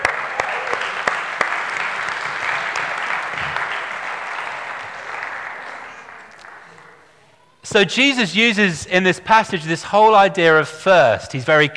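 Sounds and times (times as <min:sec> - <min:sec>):
crowd applauding: 0:00.0 - 0:07.2
speech: 0:07.7 - 0:11.7.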